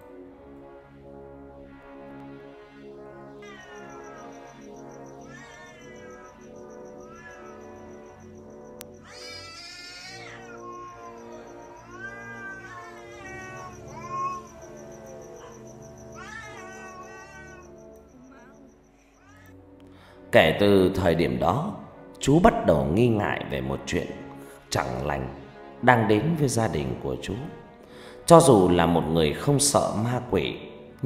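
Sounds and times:
cat meowing mournfully: 3.4 - 19.6
speech: 20.3 - 27.6, 28.3 - 31.0.

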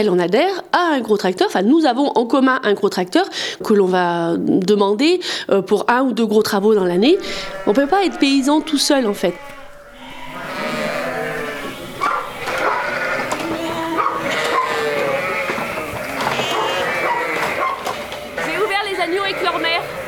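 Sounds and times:
speech: 0.0 - 9.6
lambs bleating and calling on a farm: 6.8 - 20.0.

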